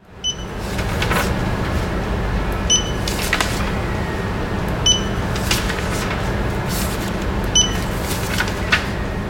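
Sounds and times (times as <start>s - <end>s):
steady low mechanical hum: 0.0s - 9.2s
barcode scanner gun beeping while reading barcodes on sample request forms: 0.2s - 0.6s, 2.6s - 3.9s, 4.8s - 5.6s, 7.5s - 8.0s.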